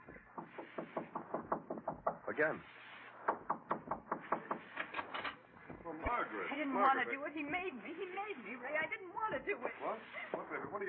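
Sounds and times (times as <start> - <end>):
soft knocking on a door: 0.0 - 2.6, 3.2 - 4.9, 5.6 - 6.2
speech: 2.4 - 2.9, 5.9 - 10.8.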